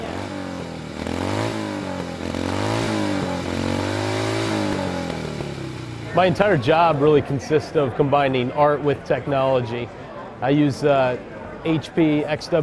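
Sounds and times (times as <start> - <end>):
custom chopper motorcycle engine revving: 0.0 - 7.4
speech: 6.2 - 12.6.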